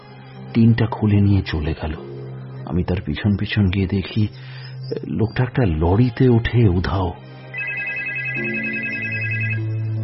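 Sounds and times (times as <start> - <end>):
speech: 0.5 - 2.1, 2.7 - 7.3, 8.4 - 8.8
telephone ringing with an electronic ringtone: 7.5 - 10.0.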